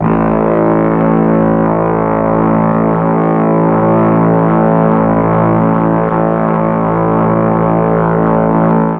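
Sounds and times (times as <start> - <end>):
brass at half speed: 0.0 - 8.9
mellotron: 0.0 - 8.9.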